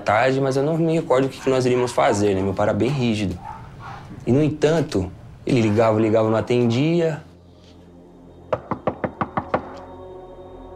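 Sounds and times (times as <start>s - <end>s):
speech: 0.0s - 3.5s, 4.2s - 7.3s
firm knocks on a door: 8.5s - 9.7s.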